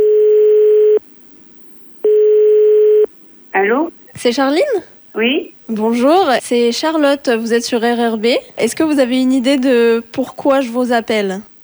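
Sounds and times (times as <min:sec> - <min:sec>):
telephone ringing tone on the line: 0:00.0 - 0:01.0, 0:02.1 - 0:03.1
speech: 0:03.7 - 0:11.5.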